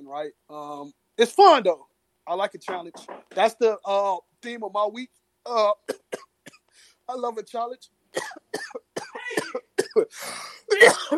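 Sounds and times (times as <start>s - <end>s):
speech: 0.1s - 6.2s, 7.1s - 11.1s
hoarse coughing fit: 8.2s - 11.1s.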